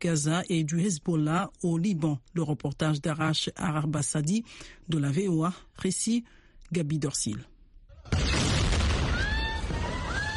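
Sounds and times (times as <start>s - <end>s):
speech: 0.0s - 7.5s
loud explosion: 7.9s - 10.3s.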